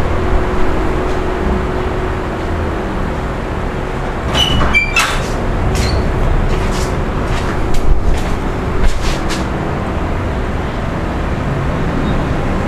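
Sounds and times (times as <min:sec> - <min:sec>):
fan running in a hotel room: 0:00.0 - 0:11.5
brief bright clicks and rustles: 0:04.2 - 0:09.6.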